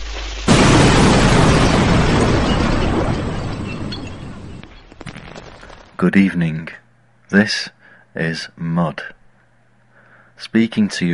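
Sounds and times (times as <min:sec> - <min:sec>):
explosion: 0:00.0 - 0:06.0
speech: 0:06.0 - 0:09.2, 0:10.4 - 0:11.1.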